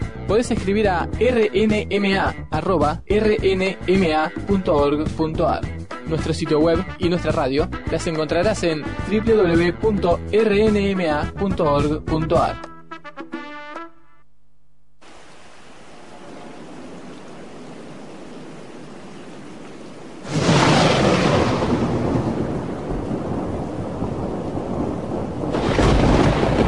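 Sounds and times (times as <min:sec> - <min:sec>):
speech: 0:00.3 - 0:12.7
steady hissing rainfall in a thunderstorm: 0:15.0 - 0:26.6
heavy rumble of thunder: 0:15.1 - 0:26.6.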